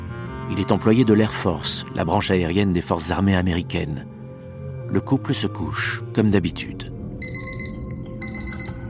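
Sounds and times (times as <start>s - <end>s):
speech: 0.5s - 4.2s, 4.9s - 6.9s
alarm clock electronic beeping: 7.2s - 8.8s.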